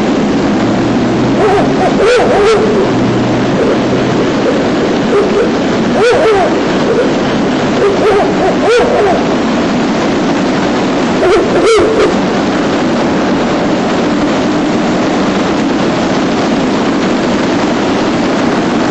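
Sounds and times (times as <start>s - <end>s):
constant loud rushing noise: 0.0s - 18.8s
male Ural owl hooting in a forest: 1.3s - 9.6s, 11.2s - 12.2s.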